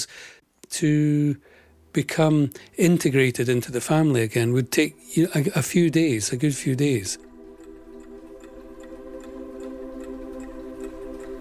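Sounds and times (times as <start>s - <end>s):
speech: 0.8s - 7.3s
low tonal hum: 2.8s - 11.4s
clock ticking: 3.0s - 11.4s.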